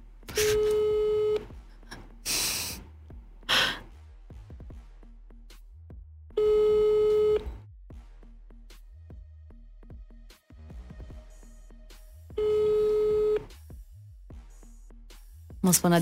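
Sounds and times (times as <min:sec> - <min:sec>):
telephone line beeps on an unanswered call: 0:00.4 - 0:01.5, 0:06.4 - 0:07.4, 0:12.4 - 0:13.4
speech: 0:15.7 - 0:16.0.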